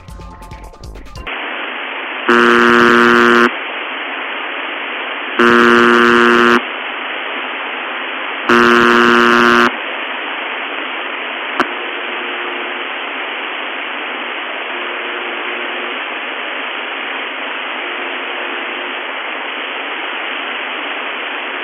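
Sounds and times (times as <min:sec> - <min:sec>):
harsh electronic buzzer blaring: 0:02.3 - 0:03.5, 0:05.4 - 0:06.6, 0:08.5 - 0:09.7
steady quieter droning buzz: 0:05.4 - 0:06.8, 0:08.5 - 0:21.6.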